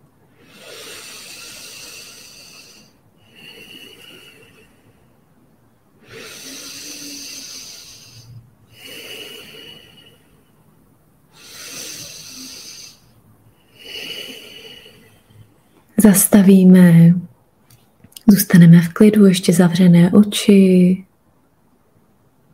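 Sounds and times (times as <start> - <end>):
slow deep breaths in and out during a guided breathing exercise: 0.3 - 15.9
speech: 16.0 - 17.3, 18.3 - 21.1.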